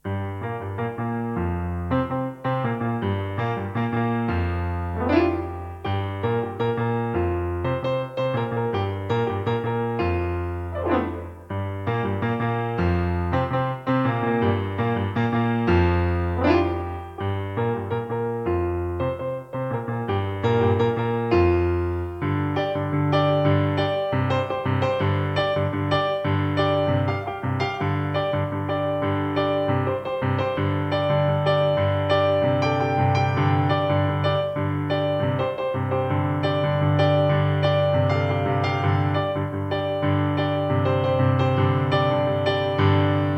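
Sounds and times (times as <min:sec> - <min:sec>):
piano: 0:00.0 - 0:43.3.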